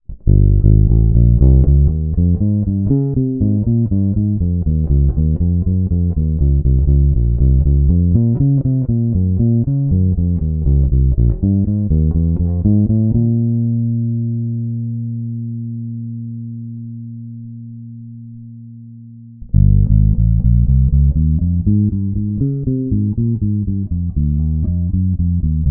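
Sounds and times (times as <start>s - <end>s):
jazz bass guitar line: 0.0s - 25.7s.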